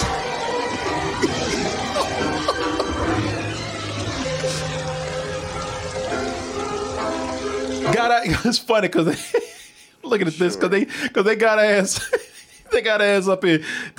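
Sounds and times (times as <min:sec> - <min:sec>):
laughter: 0:00.0 - 0:04.7, 0:08.3 - 0:11.0, 0:11.9 - 0:12.7
heavy rain pouring down at night: 0:00.0 - 0:09.4
speech: 0:08.0 - 0:09.5, 0:10.1 - 0:13.9.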